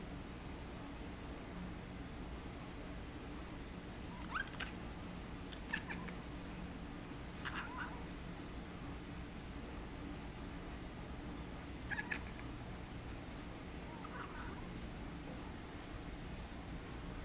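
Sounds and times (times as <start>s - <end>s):
steady low hum and hiss: 0.0s - 17.2s
cat giving short faint meows: 4.2s - 4.8s, 5.7s - 6.2s, 7.4s - 8.0s, 11.9s - 12.4s, 14.0s - 14.6s.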